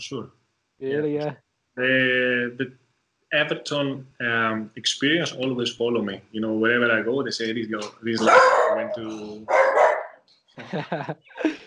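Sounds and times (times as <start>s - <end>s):
speech: 0.0s - 9.8s, 10.6s - 11.6s
person laughing: 1.8s - 2.6s, 3.5s - 9.4s, 10.6s - 11.6s
dog barking: 8.2s - 10.2s.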